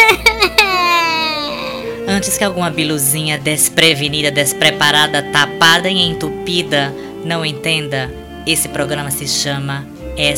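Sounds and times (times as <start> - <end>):
woman crying: 0.0 - 2.1
speech: 2.2 - 10.3.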